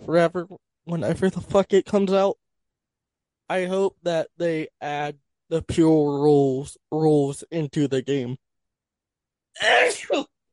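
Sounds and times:
speech: 0:00.1 - 0:02.4, 0:03.5 - 0:08.4, 0:09.6 - 0:10.4
person sneezing: 0:09.6 - 0:10.3.

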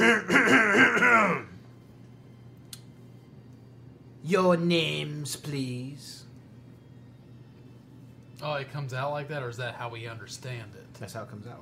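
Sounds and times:
voice acting out a throat clearing for a tabletop role-playing game character: 0:00.0 - 0:01.6
speech: 0:04.2 - 0:06.2, 0:08.4 - 0:11.6.

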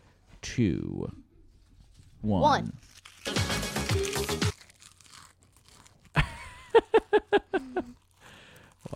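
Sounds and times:
speech: 0:00.6 - 0:01.2, 0:02.2 - 0:03.0
biting a Calbee seaweed and salt potato chip: 0:02.7 - 0:06.9, 0:07.8 - 0:08.9.

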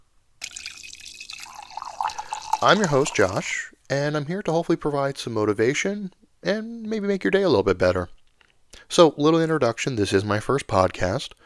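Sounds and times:
coffee being poured into a cup: 0:00.4 - 0:03.7
speech: 0:02.6 - 0:08.2, 0:08.8 - 0:11.4.

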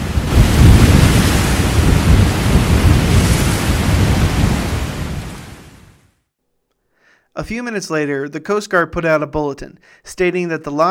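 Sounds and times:
heavy waves crashing at sea with rumbling low surges and hissing spray: 0:00.0 - 0:06.0
roaring storm wind at sea: 0:00.0 - 0:06.0
speech: 0:07.5 - 0:10.8.

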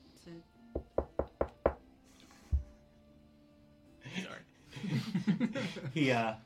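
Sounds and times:
speech: 0:00.2 - 0:00.6, 0:05.4 - 0:06.4
knocking on a door: 0:00.8 - 0:01.9
laughter: 0:04.7 - 0:06.2.

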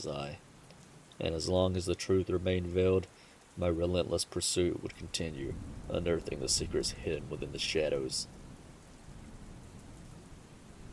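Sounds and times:
speech: 0:00.0 - 0:00.5, 0:01.2 - 0:08.4
steady dense rain hissing: 0:00.0 - 0:10.9
low continuous rumble of thunder: 0:04.9 - 0:10.9.

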